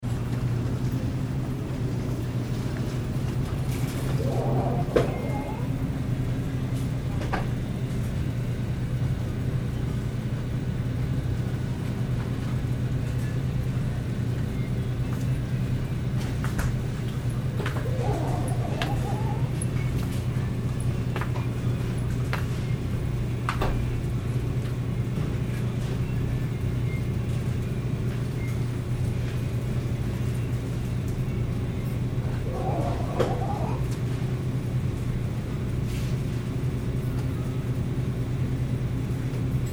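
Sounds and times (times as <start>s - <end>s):
grocery store background noise near the frozen foods section: 0.0s - 39.7s.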